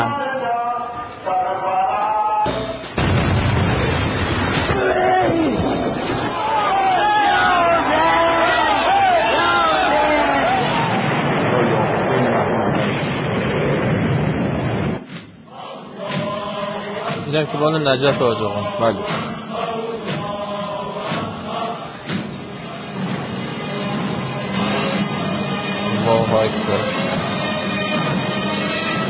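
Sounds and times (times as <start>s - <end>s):
crowd chanting at a mourning procession: 0.0s - 2.8s, 4.7s - 11.0s, 15.3s - 28.1s
bomb blast at crowded mourning procession: 2.5s - 6.4s, 10.5s - 15.1s
crowd shouting and screaming after bomb blast: 4.7s - 11.4s
speech: 17.4s - 19.4s, 26.3s - 27.1s.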